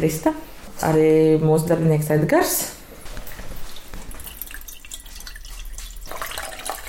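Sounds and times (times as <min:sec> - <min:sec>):
speech: 0:00.0 - 0:02.8
liquid paraffin pouring and dripping for candle making: 0:03.1 - 0:06.8.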